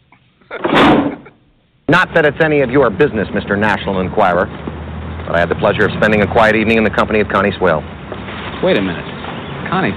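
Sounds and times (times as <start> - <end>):
speech: 0.5 - 0.8, 1.9 - 4.6, 5.2 - 7.9, 8.6 - 9.1, 9.7 - 9.9
drawer slamming shut with a rattling tail: 0.6 - 1.3.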